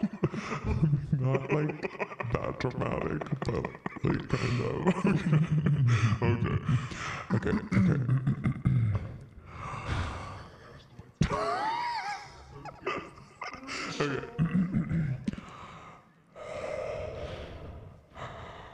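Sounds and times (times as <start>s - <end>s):
laughter: 0.0s - 9.1s, 11.2s - 15.4s
speech: 0.5s - 8.2s
heavy breathing into a microphone: 9.4s - 10.8s, 15.3s - 18.7s.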